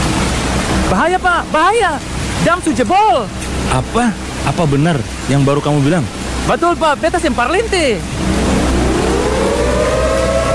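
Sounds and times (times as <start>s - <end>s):
low rumbling background: 0.0s - 10.5s
speech: 0.9s - 8.6s
warning siren wailing: 8.1s - 10.5s.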